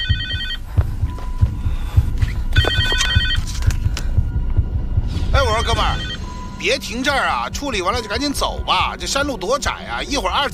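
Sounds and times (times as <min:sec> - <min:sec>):
mobile phone ringing beside a car on a narrow mountain road: 0:00.0 - 0:00.7, 0:02.5 - 0:03.8, 0:05.4 - 0:06.6
steady low rhythmic thumping: 0:00.0 - 0:10.5
speech: 0:05.8 - 0:10.5.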